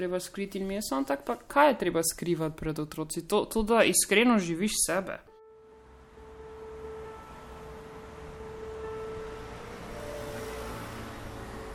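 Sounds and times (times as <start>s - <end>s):
speech: 0.0s - 5.3s
faint tonal drone: 5.4s - 11.7s
vehicles passing at a bus stop: 5.5s - 11.7s
engine hum: 5.6s - 11.7s.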